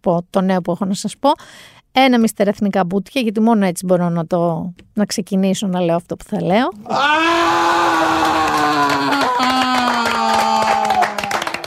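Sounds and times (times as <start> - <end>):
speech: 0.0 - 7.7
long loud dramatic scream: 6.8 - 11.4.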